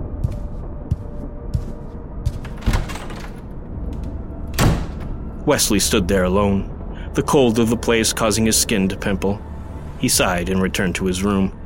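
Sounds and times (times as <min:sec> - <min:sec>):
bedroom door closing: 0:02.4 - 0:05.4
speech: 0:05.5 - 0:11.6.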